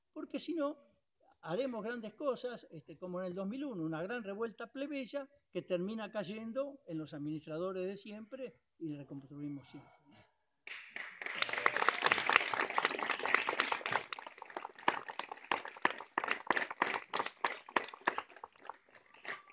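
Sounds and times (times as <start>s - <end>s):
speech: 0.3s - 10.0s
audience applause after a panel discussion: 10.7s - 19.5s.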